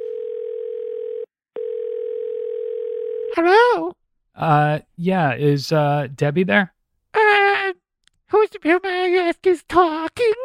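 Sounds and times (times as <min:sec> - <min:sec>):
telephone ringing tone on the line: 0:00.0 - 0:03.4
speech: 0:03.4 - 0:06.7, 0:08.5 - 0:10.4.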